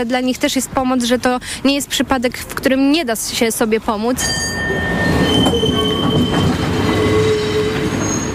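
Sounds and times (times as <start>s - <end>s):
speech: 0.0s - 5.6s
old tram rolling along its rails: 0.0s - 8.3s
thin metallic tram wheel squeals: 4.2s - 8.3s.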